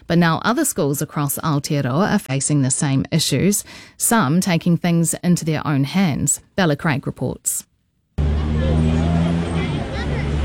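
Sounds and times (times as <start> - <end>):
speech: 0.1 - 7.7
children's voices chattering outside a school: 8.2 - 10.4
idling engines rumbling low: 8.2 - 10.4
morning road traffic outside a school: 8.2 - 10.4.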